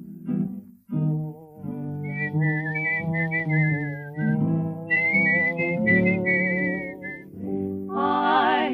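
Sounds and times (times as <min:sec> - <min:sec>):
full instrumental backing music: 0:00.0 - 0:08.7
person whistling a bright melody: 0:02.0 - 0:07.6.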